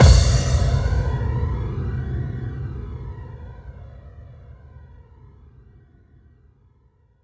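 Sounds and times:
hall reverb kick drum: 0.0 - 2.4.

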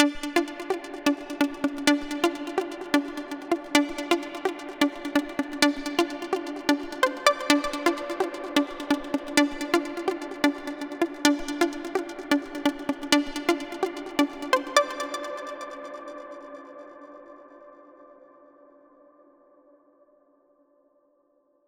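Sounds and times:
synth sequence at 128 BPM with root D: 0.0 - 16.0.

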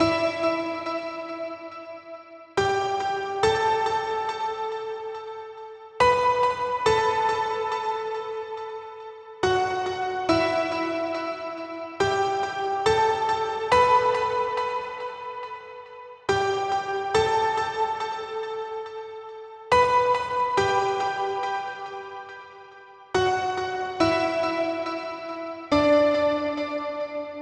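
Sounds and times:
piano melody in E minor with reverb: 0.0 - 27.4.

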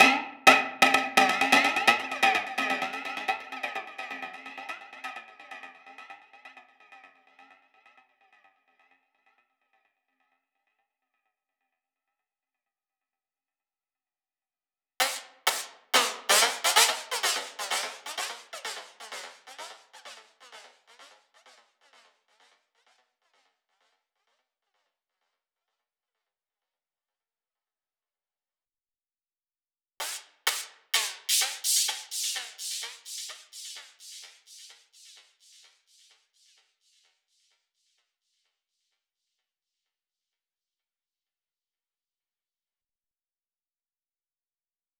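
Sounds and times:
FX percussion: 0.0 - 7.6, 15.0 - 22.5, 30.0 - 37.6.

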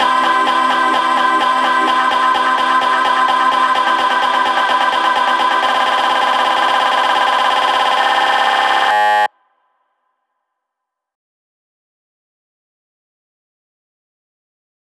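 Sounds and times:
retro melody fills in C: 0.0 - 9.3.

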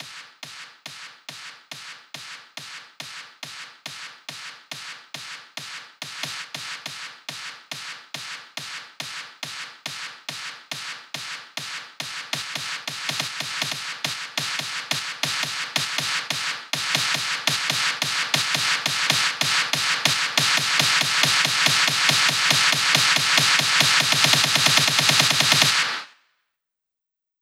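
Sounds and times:
snare drum playing: 12.0 - 26.0.

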